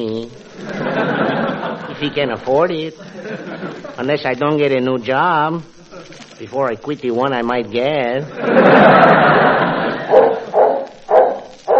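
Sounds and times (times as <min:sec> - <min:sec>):
speech: 0:00.0 - 0:00.9, 0:02.0 - 0:09.6
laughter: 0:00.5 - 0:04.3, 0:05.7 - 0:06.4, 0:08.1 - 0:10.5
dog barking: 0:10.0 - 0:11.7.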